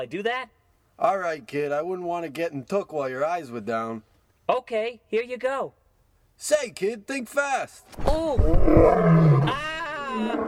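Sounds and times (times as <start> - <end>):
speech: 0.0 - 5.8, 6.4 - 10.4
lion roaring at a zoo: 8.4 - 10.4.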